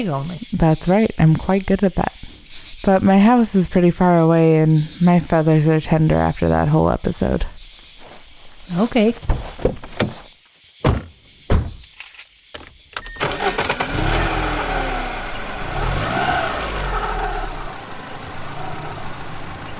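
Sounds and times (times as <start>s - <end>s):
speech: 0.0s - 2.2s, 2.8s - 7.5s, 8.7s - 9.4s
car door thunks: 9.3s - 11.9s
car engine starting and revving as it drives off: 13.2s - 19.7s.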